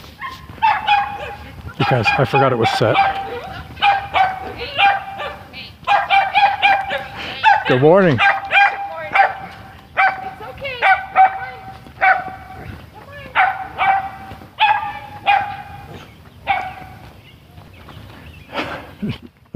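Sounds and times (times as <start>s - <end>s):
small collie-like dog barking: 0.2s - 17.1s
speech: 1.9s - 3.3s, 7.7s - 8.3s.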